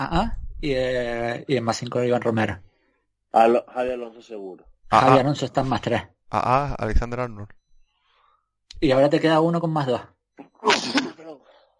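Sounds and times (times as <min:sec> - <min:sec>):
speech: 0:00.0 - 0:02.7, 0:03.3 - 0:07.6, 0:08.8 - 0:11.1
sneeze: 0:10.6 - 0:11.4.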